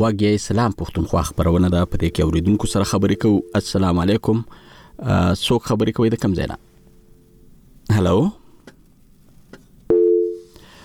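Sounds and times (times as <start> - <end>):
speech: 0.0 - 6.7, 7.9 - 8.4
telephone line cut-off tone during a radio call-in: 1.9 - 3.7.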